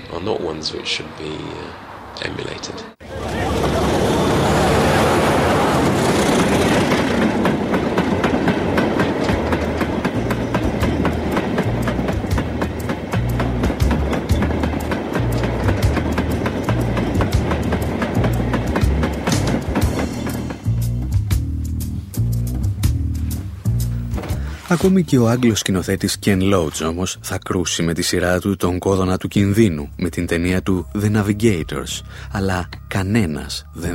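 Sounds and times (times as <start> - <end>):
speech: 0.1 - 3.1, 24.8 - 33.9
deep continuous rumble of train: 1.9 - 24.6
train wheels clickety-clack on rails: 5.5 - 20.9.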